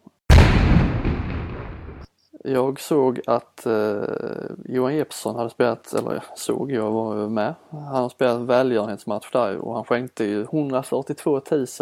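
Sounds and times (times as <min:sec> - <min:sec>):
cannon shot sound effect: 0:00.3 - 0:02.1
speech: 0:02.4 - 0:11.7.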